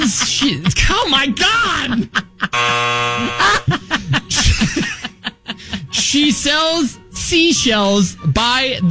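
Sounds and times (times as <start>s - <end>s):
people chuckling and laughing: 0.0s - 6.2s
speech: 0.1s - 3.8s, 6.2s - 8.8s
loud flat game show buzzer in a tongue-twister game: 2.6s - 3.7s.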